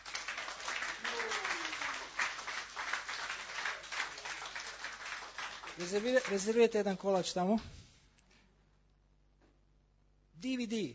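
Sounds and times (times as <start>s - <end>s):
audience applause: 0.0s - 6.7s
speech: 5.8s - 7.8s, 10.4s - 10.9s.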